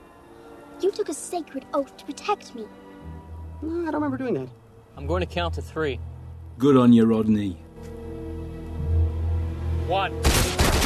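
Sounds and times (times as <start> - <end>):
speech: 0.8 - 2.8, 3.6 - 7.9, 9.9 - 10.5
gunshots: 10.2 - 10.8.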